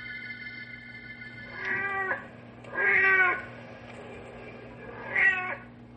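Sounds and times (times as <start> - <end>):
tomcat yowling into a caterwaul: 1.5 - 3.5, 5.0 - 5.7.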